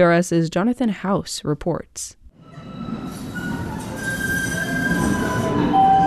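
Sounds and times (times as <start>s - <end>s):
speech: 0.0s - 2.2s
light rail train rolling along its tracks: 2.4s - 6.0s
high metallic wheel squeals of a light rail train: 2.5s - 6.0s.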